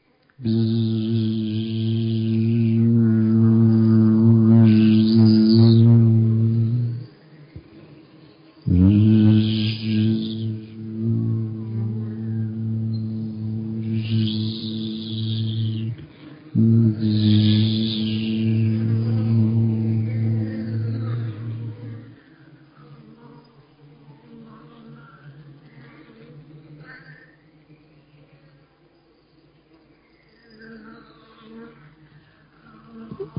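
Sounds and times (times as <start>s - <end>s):
human voice humming a buzz imitating bees: 0.4s - 28.4s, 30.6s - 33.3s.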